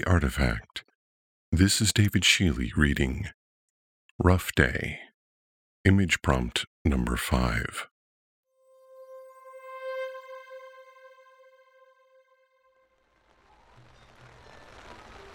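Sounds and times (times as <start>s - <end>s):
speech: 0.0s - 0.7s, 1.5s - 3.4s, 4.2s - 5.0s, 5.8s - 7.9s
sustained humming musical tone: 8.6s - 13.2s
rain falling: 13.0s - 15.3s.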